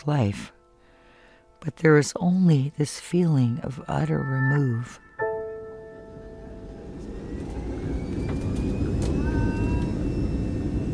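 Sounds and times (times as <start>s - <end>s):
speech: 0.0s - 0.6s, 1.6s - 5.0s
high whining jet turbine tones: 5.9s - 10.9s
jet airliner engines roaring during takeoff heard from inside the cabin: 6.0s - 10.9s.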